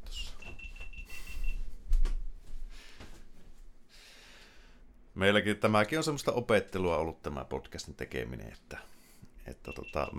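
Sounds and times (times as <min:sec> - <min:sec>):
electronic device beeping in short high-pitched pulses: 0:00.4 - 0:01.6, 0:09.6 - 0:10.1
speech: 0:05.2 - 0:10.1.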